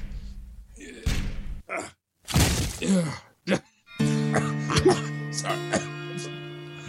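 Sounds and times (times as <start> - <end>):
effortful grunts: 0.8 - 2.0, 2.7 - 3.8, 4.3 - 6.3
door splintering crash as it gives way: 2.3 - 2.8.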